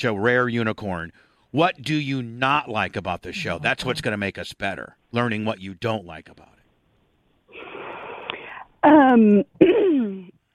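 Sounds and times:
speech: 0:00.0 - 0:06.6, 0:08.8 - 0:10.4
woman clearing her throat: 0:09.5 - 0:10.3.

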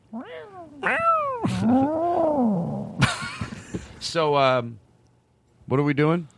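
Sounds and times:
cat meowing loudly: 0:00.1 - 0:02.0
speech: 0:00.1 - 0:02.0, 0:04.0 - 0:04.8, 0:05.7 - 0:06.3.

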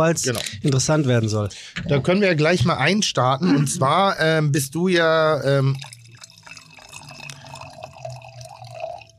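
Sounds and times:
speech: 0:00.0 - 0:05.9
wine pouring into a glass: 0:05.2 - 0:09.1.

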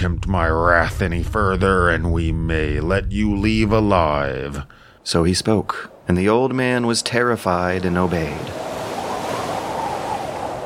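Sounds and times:
speech: 0:00.0 - 0:08.7
ocean surf waves washing against the shore: 0:05.0 - 0:10.6.

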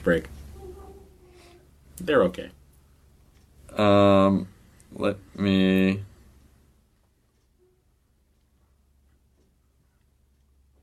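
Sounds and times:
speech: 0:00.0 - 0:00.4, 0:02.0 - 0:02.6, 0:03.7 - 0:06.1
clock ticking: 0:00.0 - 0:01.0, 0:01.8 - 0:10.8
low hum: 0:00.0 - 0:10.8.

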